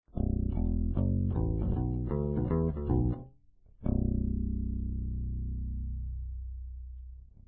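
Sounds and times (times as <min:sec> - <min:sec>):
electric guitar picked on neck pickup: 0:00.2 - 0:06.6.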